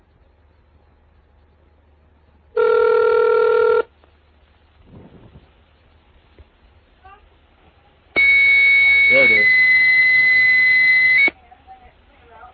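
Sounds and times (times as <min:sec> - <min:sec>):
modem dialing tone on a telephone line: 0:02.6 - 0:03.9, 0:08.2 - 0:11.4
telephone line ringing beeps: 0:02.6 - 0:03.9, 0:08.2 - 0:11.3.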